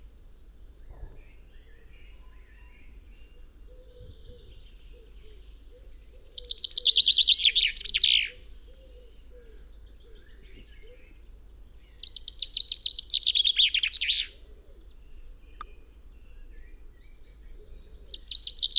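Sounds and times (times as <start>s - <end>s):
common chaffinch song, Fringilla coelebs: 3.9s - 9.9s, 10.6s - 14.5s, 15.1s - 18.7s.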